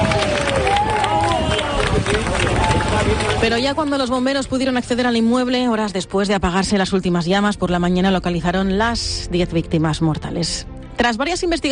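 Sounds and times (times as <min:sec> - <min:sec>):
crowd steady clapping: 0:00.0 - 0:04.3
speech: 0:03.4 - 0:11.6.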